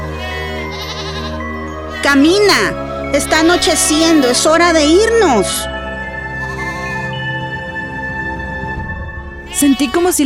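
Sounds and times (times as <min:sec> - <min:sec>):
goat bleating: 0:00.2 - 0:04.5, 0:06.4 - 0:07.1, 0:09.5 - 0:10.1
speech: 0:02.0 - 0:05.7, 0:09.6 - 0:10.2.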